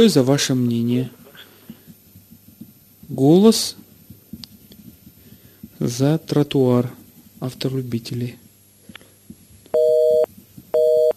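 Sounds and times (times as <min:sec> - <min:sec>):
speech: 0:00.0 - 0:01.2, 0:03.1 - 0:03.8, 0:05.8 - 0:08.4
telephone busy signal on a radio studio's phone line: 0:09.8 - 0:11.1.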